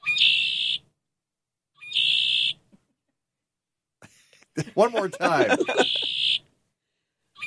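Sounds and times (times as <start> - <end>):
red-winged blackbird buzzy trilling call: 0.0 - 0.9, 1.8 - 2.6, 5.6 - 6.5
laughter: 4.0 - 6.2
speech: 4.8 - 6.1.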